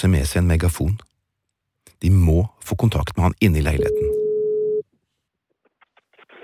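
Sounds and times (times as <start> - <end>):
speech: 0.0 - 1.1, 2.0 - 4.2
unanswered phone call electronic tone: 3.8 - 4.8.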